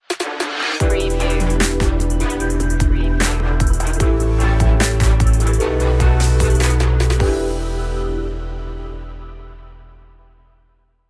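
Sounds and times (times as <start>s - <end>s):
trap music stinger: 0.8s - 8.2s.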